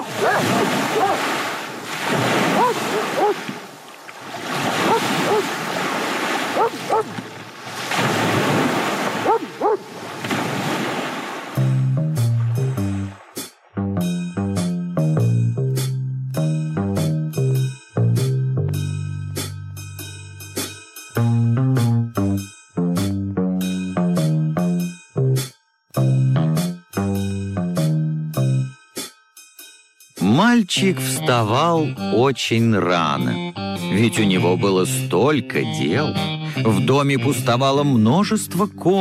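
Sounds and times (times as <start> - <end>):
sea waves breaking on a shore: 0.0 - 13.7
melodic music passage: 11.6 - 29.5, 30.2 - 38.9
speech: 30.7 - 38.9.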